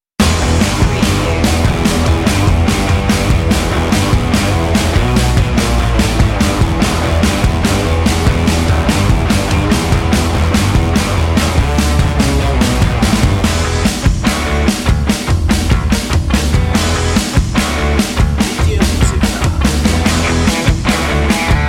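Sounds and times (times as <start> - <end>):
rock music for a commercial: 0.2 - 21.6.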